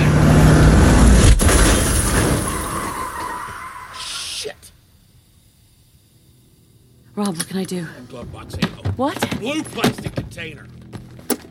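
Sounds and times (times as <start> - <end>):
car engine roaring at high speed: 0.0 - 3.9
speech: 7.2 - 10.8.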